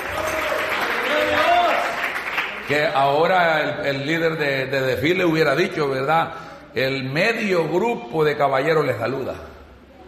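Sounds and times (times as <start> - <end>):
congregation applauding during a church service: 0.0 - 2.7
speech: 2.7 - 9.5.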